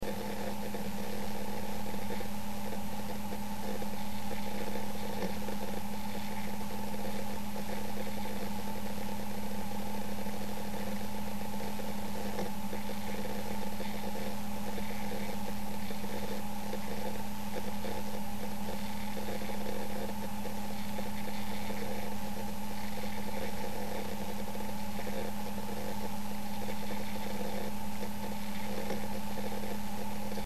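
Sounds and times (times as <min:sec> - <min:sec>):
small Seagate hard drive: 0:00.0 - 0:30.4.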